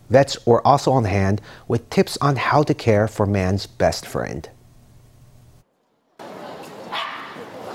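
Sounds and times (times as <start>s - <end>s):
speech: 0.1s - 4.6s
noisy outdoor crowd in a park: 6.2s - 7.7s
rescue dog barking at a working-dog charity event in a park: 6.9s - 7.7s.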